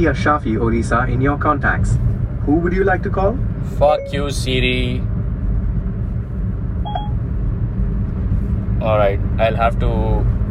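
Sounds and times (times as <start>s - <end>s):
speech: 0.0s - 5.2s, 8.8s - 10.4s
car interior road and engine rumble while driving: 0.0s - 10.4s
short electronic beep: 3.8s - 4.4s, 6.9s - 7.2s.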